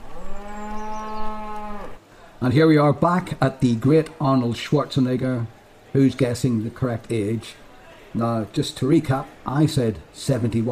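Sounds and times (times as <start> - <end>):
cow mooing: 0.2 - 2.0
speech: 2.4 - 10.7.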